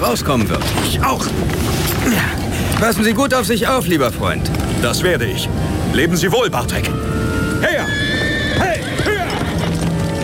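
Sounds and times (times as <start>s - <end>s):
speech: 0.0s - 8.0s
spurred horse whinnying: 7.6s - 9.9s
horse hoofbeats on crunching snow as it is ridden off: 7.9s - 10.2s.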